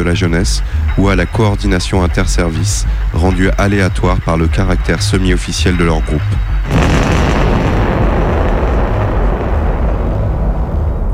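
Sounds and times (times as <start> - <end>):
speech: 0.0 - 7.0
massive explosion destroying a building: 6.6 - 11.1
loud sustained roaring rumble: 6.7 - 11.1.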